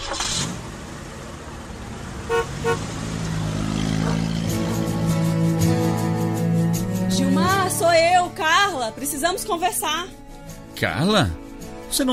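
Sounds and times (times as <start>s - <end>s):
car engine starting and revving as the car pulls away: 0.0s - 7.7s
car horn tooting: 2.3s - 2.9s
speech: 8.8s - 10.2s, 10.8s - 12.1s.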